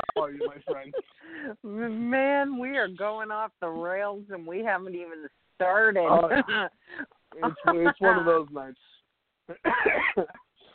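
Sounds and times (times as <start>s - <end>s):
laughter: 0.0s - 1.6s, 6.1s - 6.7s, 7.4s - 8.3s
speech: 0.2s - 10.4s
hoarse cough: 9.5s - 10.4s.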